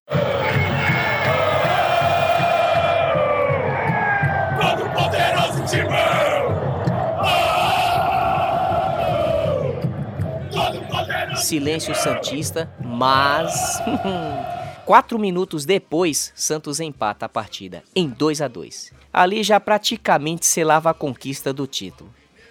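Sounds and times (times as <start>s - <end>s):
huge stadium football crowd chanting and cheering in unison: 0.0s - 14.9s
speech: 11.5s - 22.2s
laughter: 13.4s - 14.8s.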